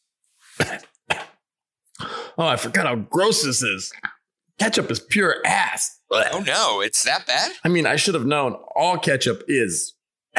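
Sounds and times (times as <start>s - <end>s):
raspy coughs after eating: 0.6s - 1.4s
speech: 2.4s - 10.3s.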